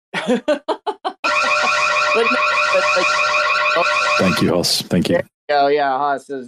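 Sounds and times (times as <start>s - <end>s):
speech: 0.2s - 0.8s, 2.2s - 6.4s
laughter: 0.2s - 1.9s
loud electronic alarm blaring: 1.2s - 4.6s.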